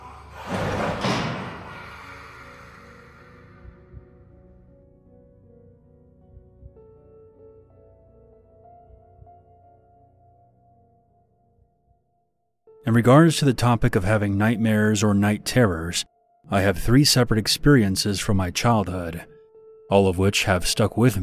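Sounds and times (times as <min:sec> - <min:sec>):
heavy rusted metal door slamming shut: 0:00.0 - 0:02.5
low hum: 0:00.0 - 0:11.8
speech: 0:12.9 - 0:19.3, 0:19.9 - 0:21.2.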